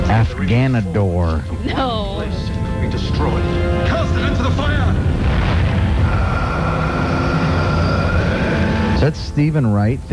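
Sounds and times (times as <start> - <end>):
speech: 0.1 - 4.7, 9.1 - 10.1
bomb explosion roar: 2.8 - 10.1.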